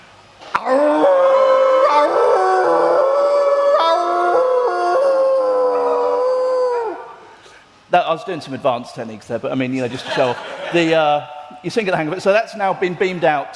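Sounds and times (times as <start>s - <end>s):
person imitating a wolf howl: 0.5s - 7.3s
speech: 8.1s - 13.5s
laughter: 9.8s - 11.2s.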